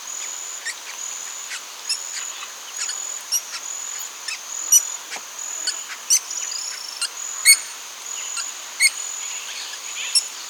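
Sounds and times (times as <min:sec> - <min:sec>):
White-fronted Woodpecker Melanerpes cactorum calling: 0:00.2 - 0:10.3.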